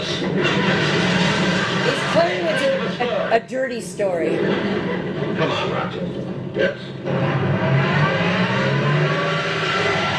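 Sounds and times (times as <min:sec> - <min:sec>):
car engine revving and roaring as the vehicle approaches: 0:00.0 - 0:03.3, 0:04.4 - 0:10.1
speech: 0:01.9 - 0:07.9.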